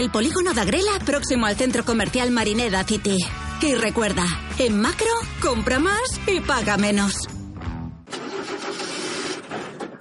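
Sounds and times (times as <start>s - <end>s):
speech: 0.0s - 7.4s
car engine cranking and starting: 8.1s - 9.9s.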